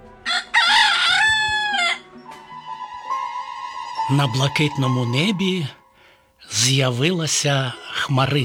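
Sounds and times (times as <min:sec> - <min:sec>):
rooster crowing loudly in a farmyard at sunrise: 0:00.2 - 0:04.1
speech: 0:04.1 - 0:05.8, 0:06.5 - 0:08.4.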